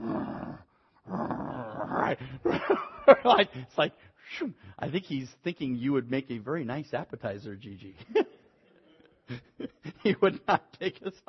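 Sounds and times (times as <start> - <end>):
person imitating the growl of a tiger: 0.0 - 2.5
speech: 2.0 - 8.3, 9.3 - 11.2
laughter: 2.2 - 3.7, 8.0 - 11.2.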